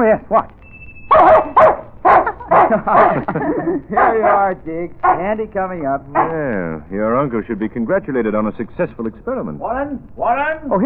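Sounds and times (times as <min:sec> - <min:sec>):
speech: 0:00.0 - 0:01.8, 0:02.7 - 0:10.8
dog barking: 0:01.1 - 0:03.3, 0:03.9 - 0:05.3, 0:06.1 - 0:06.5
laughter: 0:02.1 - 0:04.4.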